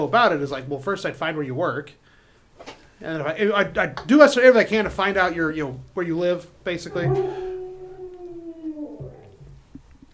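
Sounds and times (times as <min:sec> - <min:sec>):
speech: 0:00.0 - 0:07.5
person imitating werewolf growls: 0:06.8 - 0:09.5
person imitating a werewolf howl: 0:06.9 - 0:09.5.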